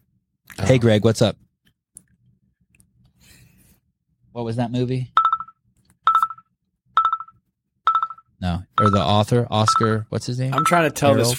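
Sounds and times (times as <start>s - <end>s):
speech: 0.7s - 1.4s, 4.4s - 5.2s, 8.4s - 11.3s
phone ringing with an incoming call: 5.2s - 11.3s.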